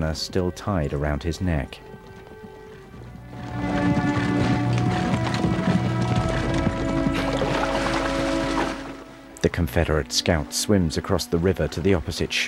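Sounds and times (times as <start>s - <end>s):
speech: 0.0s - 1.9s, 9.4s - 12.4s
horses and a colt trotting along a narrow woodland path: 0.0s - 9.4s.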